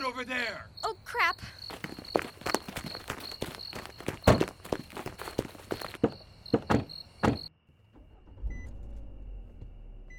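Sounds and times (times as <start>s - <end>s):
speech: 0.2s - 1.6s
footsteps: 1.4s - 7.5s
car engine rumbling as car pulls away at night: 4.1s - 10.1s
car doors shutting: 6.0s - 10.1s.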